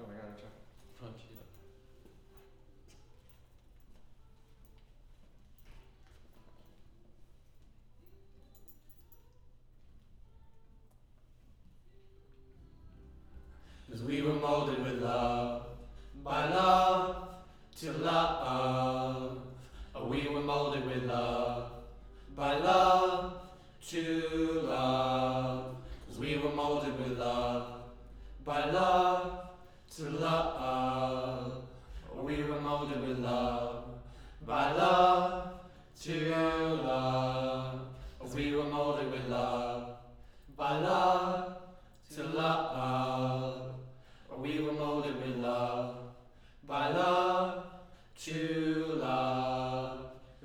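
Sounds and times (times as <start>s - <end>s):
choir singing low and mid harmony: 13.0s - 50.4s.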